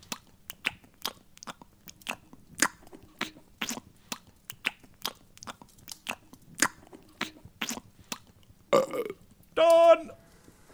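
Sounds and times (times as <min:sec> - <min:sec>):
crunchy chewing of a steak bake and crisps: 0:00.0 - 0:10.6
loud drawn-out burp: 0:08.7 - 0:10.0.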